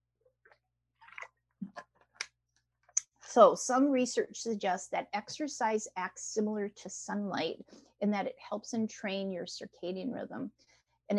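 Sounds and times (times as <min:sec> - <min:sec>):
person gulping and swallowing water: 0:01.0 - 0:01.8
speech: 0:03.4 - 0:11.1.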